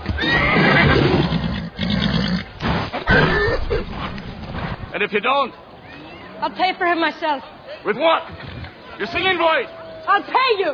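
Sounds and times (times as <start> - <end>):
nervous skittish horse neighing: 0.1 - 4.2
nervous horse grunting and snorting: 0.3 - 5.0
speech: 5.0 - 5.7, 6.4 - 10.7.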